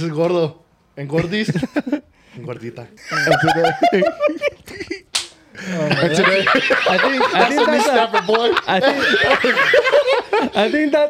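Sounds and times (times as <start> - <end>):
speech: 0.0 - 5.0, 5.6 - 11.0
several people snickering and chuckling: 3.0 - 11.0
loud knee slap: 5.1 - 5.4.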